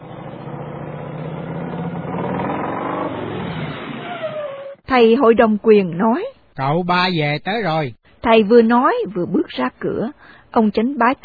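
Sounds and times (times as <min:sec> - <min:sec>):
car engine hum driving slowly and stopping: 0:00.0 - 0:04.8
road noise of a slowly rolling car: 0:00.0 - 0:04.9
speech: 0:04.9 - 0:11.2.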